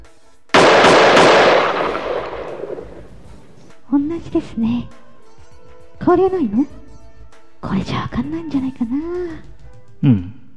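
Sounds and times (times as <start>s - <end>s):
quick gunshot cracks: 0.6s - 3.5s
gunshot sound effect blast: 0.6s - 3.6s
speech: 4.1s - 5.0s, 6.1s - 6.8s, 7.6s - 10.4s.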